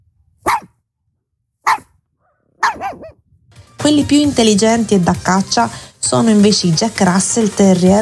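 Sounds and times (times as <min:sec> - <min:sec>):
small dog barking: 0:00.4 - 0:00.8, 0:01.6 - 0:03.2
speech: 0:03.8 - 0:08.0.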